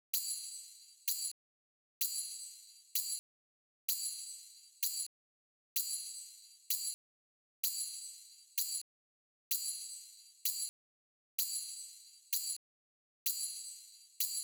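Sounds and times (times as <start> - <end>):
tambourine in big room house style: 0.2 - 1.4, 2.0 - 3.2, 3.9 - 5.0, 5.8 - 7.0, 7.6 - 8.8, 9.5 - 10.7, 11.4 - 12.6, 13.3 - 14.4.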